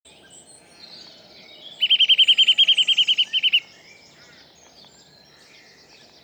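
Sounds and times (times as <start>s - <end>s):
Eurasian nuthatch (Sitta europaea) giving a whistled trill: 1.8s - 3.6s.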